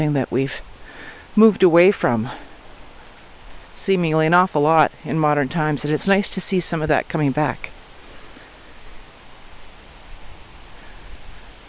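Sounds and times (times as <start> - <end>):
speech: 0.0 - 0.7, 1.4 - 2.5, 3.8 - 7.8
wind rustling tree leaves: 0.0 - 11.6.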